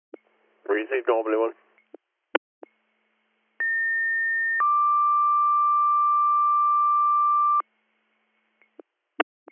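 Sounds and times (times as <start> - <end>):
speech: 0.7 - 1.6
fire department radio paging alert tones: 3.6 - 7.6.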